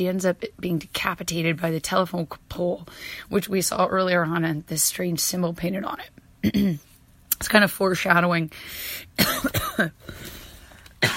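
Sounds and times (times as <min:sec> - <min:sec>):
speech: 0:00.0 - 0:10.3
person coughing from a tickle in the throat: 0:06.4 - 0:06.8, 0:09.2 - 0:10.4.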